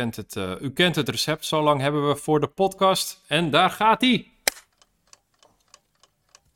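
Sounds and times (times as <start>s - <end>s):
speech: 0.0s - 4.3s
clock ticking: 4.5s - 6.5s.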